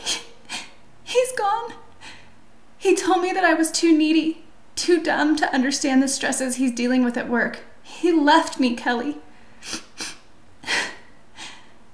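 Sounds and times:
woman sniffling while crying: 0.0s - 0.8s, 9.6s - 11.8s
speech: 2.8s - 9.9s.

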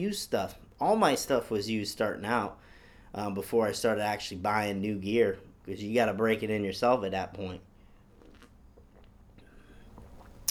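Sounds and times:
speech: 0.0s - 7.7s
quiet slurps and gulps with small wet clicks: 7.6s - 10.4s
person sipping a hot drink: 7.8s - 10.4s.

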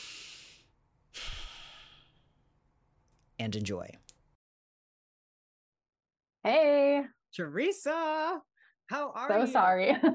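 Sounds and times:
deep breathing: 0.0s - 2.5s
speech: 3.4s - 4.1s, 6.4s - 10.1s.

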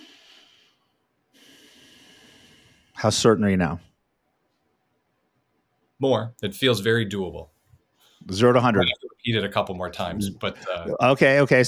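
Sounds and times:
long soft airy deep breaths: 0.0s - 3.1s
speech: 3.0s - 3.9s, 6.0s - 7.5s, 8.2s - 11.6s.

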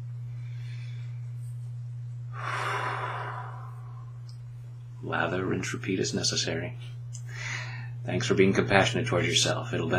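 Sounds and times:
steady low hum: 0.0s - 9.9s
deep breath taken during a self-compassion tapping exercise: 2.3s - 4.2s, 7.3s - 8.0s
speech: 5.0s - 7.0s, 8.0s - 9.9s.

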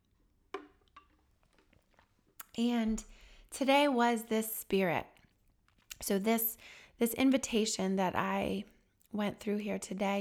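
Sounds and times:
quick sip of water with wet slurping: 0.6s - 3.6s
speech: 2.6s - 5.1s, 6.0s - 10.1s.

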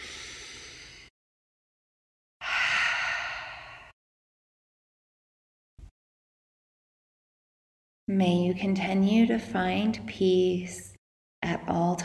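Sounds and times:
deep breathing in through the nose and out through the mouth: 0.0s - 1.1s, 2.4s - 4.0s
speech: 8.1s - 12.0s.

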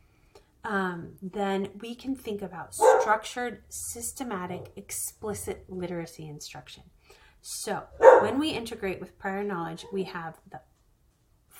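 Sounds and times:
speech: 0.6s - 10.7s
dog barking: 2.8s - 3.2s, 8.0s - 8.5s.

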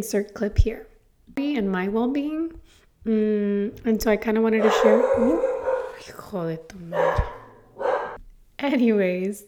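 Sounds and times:
speech: 0.0s - 7.4s, 8.6s - 9.4s
small dog yapping and barking: 4.6s - 6.1s, 7.0s - 8.2s.

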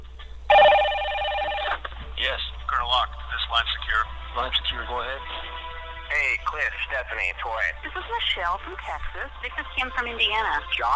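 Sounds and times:
cell phone ringtone: 0.5s - 1.8s
speech: 2.2s - 5.5s, 6.1s - 10.9s.

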